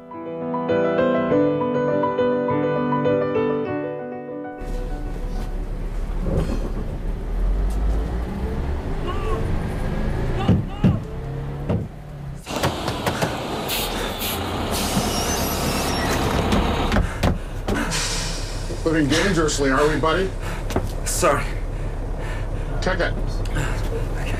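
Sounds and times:
soft music: 0.0s - 6.2s
long-distance bus engine rumbling: 4.6s - 24.3s
sharp knocks: 10.4s - 13.4s
bus air brakes hissing: 12.4s - 22.8s.

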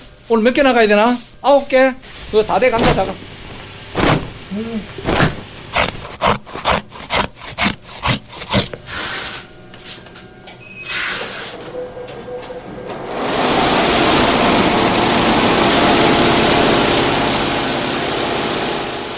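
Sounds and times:
speech: 0.3s - 3.3s, 4.5s - 5.0s
scissors cutting through material: 5.7s - 8.8s
sewing machine running: 10.5s - 19.1s.

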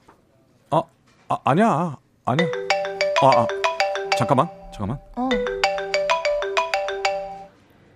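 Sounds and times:
speech: 0.7s - 2.6s, 3.2s - 3.6s, 4.2s - 5.5s
mobile phone ringtone with quick synth-like notes: 2.4s - 7.5s.

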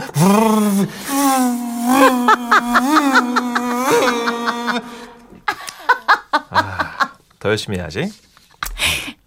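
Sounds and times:
person imitating a vacuum cleaner with droning vocal hum: 0.0s - 5.5s
speech: 0.2s - 1.4s, 7.5s - 8.2s
laughter: 1.8s - 7.2s.

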